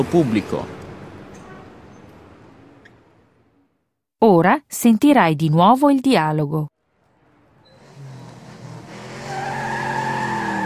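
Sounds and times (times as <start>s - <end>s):
speech: 0.0s - 0.8s, 4.2s - 6.7s
tires squealing as a fast car skids past: 7.6s - 10.6s.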